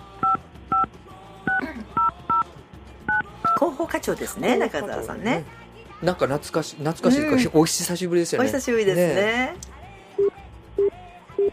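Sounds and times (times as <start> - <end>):
touch-tone telephone dialing beeps: 0.2 - 0.9, 1.5 - 2.4, 3.1 - 3.6, 10.2 - 11.5
speech: 3.6 - 9.7.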